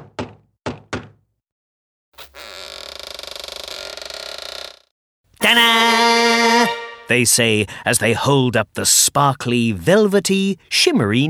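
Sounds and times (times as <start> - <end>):
knocking on a wooden door: 0.0 - 1.3
long loud creak: 2.2 - 6.6
speech: 7.1 - 11.2.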